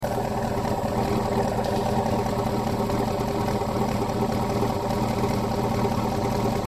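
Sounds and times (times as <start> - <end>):
sport car exhaust system idling heard from exterior: 0.0 - 6.6.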